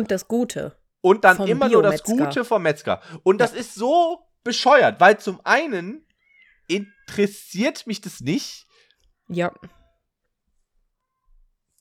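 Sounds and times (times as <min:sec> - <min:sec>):
speech: 0:00.0 - 0:06.0, 0:06.7 - 0:08.7, 0:09.3 - 0:09.8
cats meowing: 0:06.2 - 0:07.4.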